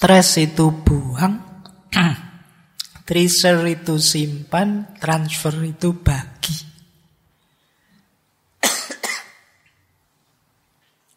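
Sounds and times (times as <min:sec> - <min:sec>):
speech: 0:00.0 - 0:02.2, 0:03.1 - 0:06.7
ageing person coughing harshly: 0:08.6 - 0:09.6.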